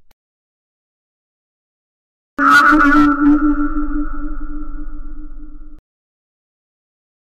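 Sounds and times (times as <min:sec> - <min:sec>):
scary horror sound effects: 0:02.4 - 0:05.8.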